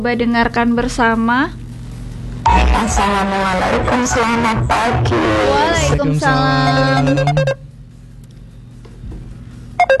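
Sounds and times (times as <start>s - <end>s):
speech: 0.0s - 1.6s, 2.4s - 7.7s
voice-message playback: 2.5s - 7.6s
telephone ringtone of short bright electronic beeps: 6.7s - 7.6s, 9.8s - 9.9s.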